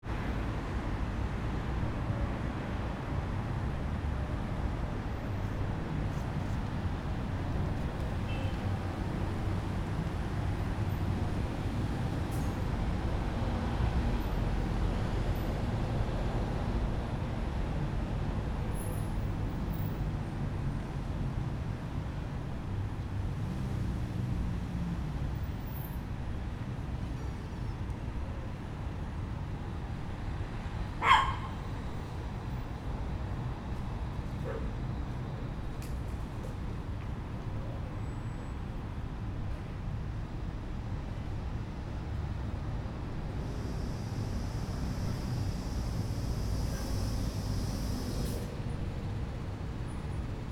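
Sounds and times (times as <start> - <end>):
small city main street ambience: 0.0 - 50.4
dog: 31.0 - 31.6, 34.4 - 34.8.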